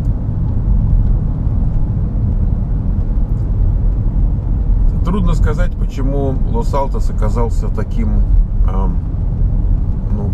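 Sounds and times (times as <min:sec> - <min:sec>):
engine and tire drone inside a moving car on a busy street: 0:00.0 - 0:10.3
speech: 0:05.1 - 0:09.1, 0:10.2 - 0:10.3.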